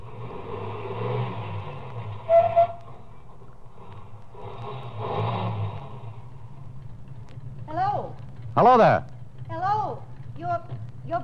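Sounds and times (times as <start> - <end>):
car engine revving: 0.0 - 9.6
short high squeal: 2.2 - 2.8
speech: 8.6 - 9.1.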